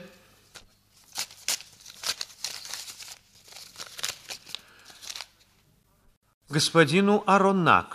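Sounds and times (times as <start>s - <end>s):
paper envelope being torn open: 1.0s - 5.4s
speech: 6.5s - 7.9s.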